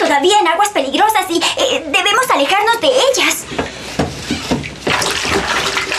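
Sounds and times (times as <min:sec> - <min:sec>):
speech: 0:00.2 - 0:01.9
oars rowing a small boat through water: 0:02.4 - 0:05.9.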